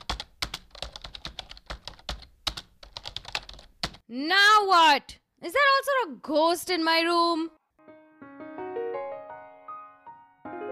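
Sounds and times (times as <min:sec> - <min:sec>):
rapid furious typing on a computer keyboard: 0:00.0 - 0:04.0
speech: 0:04.1 - 0:07.6.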